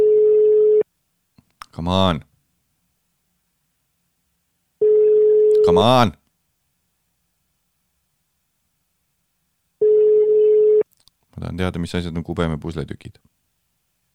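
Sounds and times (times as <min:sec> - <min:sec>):
telephone busy signal tone: 0:00.0 - 0:00.8, 0:09.8 - 0:10.8
speech: 0:01.8 - 0:02.3, 0:05.7 - 0:06.2, 0:11.4 - 0:13.4.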